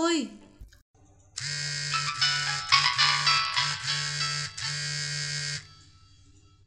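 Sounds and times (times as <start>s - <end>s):
mobile phone ringtone during a recording session: 1.4s - 6.2s.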